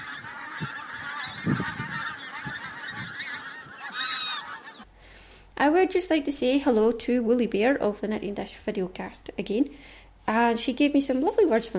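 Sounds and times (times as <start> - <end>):
flock of geese honking: 0.0 - 4.9
speech: 5.8 - 11.7.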